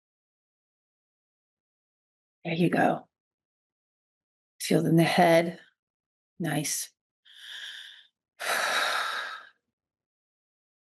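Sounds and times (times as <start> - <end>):
speech: 2.4 - 3.1, 4.6 - 5.6, 6.4 - 7.0
deep breathing: 7.3 - 9.6.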